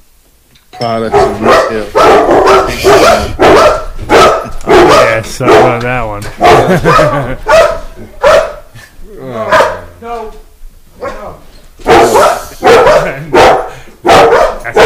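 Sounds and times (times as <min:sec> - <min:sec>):
speech: 0:00.8 - 0:03.8, 0:05.1 - 0:08.2, 0:09.3 - 0:10.4
dogs barking: 0:00.9 - 0:08.7, 0:09.4 - 0:10.0, 0:10.9 - 0:14.8
laughter: 0:02.7 - 0:03.3, 0:04.6 - 0:08.2, 0:12.1 - 0:13.7.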